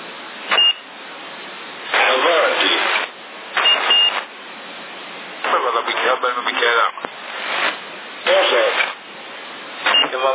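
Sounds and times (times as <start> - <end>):
steady thin CB radio hiss: 1.8 - 10.3
short high electronic beep on a CB radio channel: 3.6 - 4.2.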